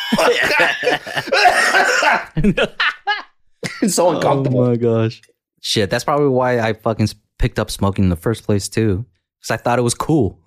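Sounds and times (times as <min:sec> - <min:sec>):
person coughing harshly: 0:00.0 - 0:02.4, 0:03.6 - 0:04.0
person laughing: 0:00.0 - 0:04.3
speech: 0:00.1 - 0:02.9, 0:03.8 - 0:10.4.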